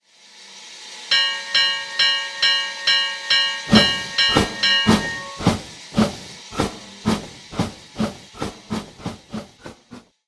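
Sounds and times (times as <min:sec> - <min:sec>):
bell ringing: 0:01.1 - 0:05.9.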